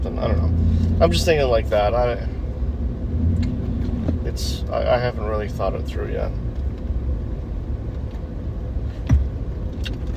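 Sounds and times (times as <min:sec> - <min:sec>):
car driving down a street toward a marina: 0:00.0 - 0:10.1
speech: 0:00.2 - 0:02.4, 0:04.4 - 0:06.4
brief thump: 0:09.0 - 0:09.3.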